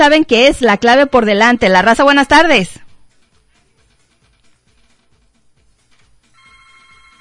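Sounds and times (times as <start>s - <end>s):
speech: 0.0s - 2.8s
rhythmic thumping beat: 1.4s - 6.4s
telephone ringing with an incoming call: 6.3s - 7.1s.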